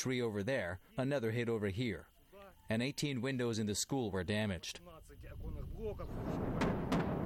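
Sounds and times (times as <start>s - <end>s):
speech: 0.0s - 7.1s
outgoing artillery fire rumbling: 6.0s - 7.2s.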